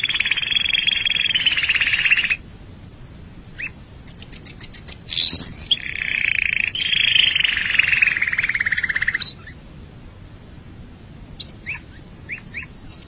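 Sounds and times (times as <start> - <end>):
canary singing trills: 0.0 - 2.4, 3.6 - 9.6, 11.4 - 13.0.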